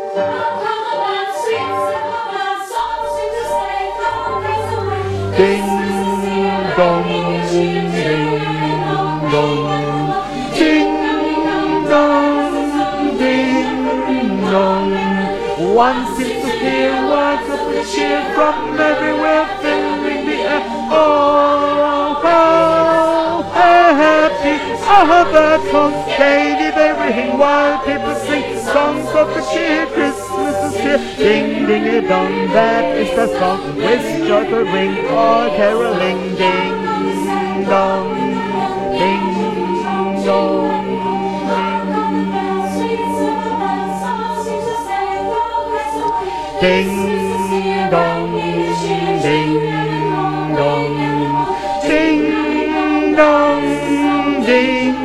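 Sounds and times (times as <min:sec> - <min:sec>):
tenor singing with gospel choir: 0:00.1 - 0:55.0.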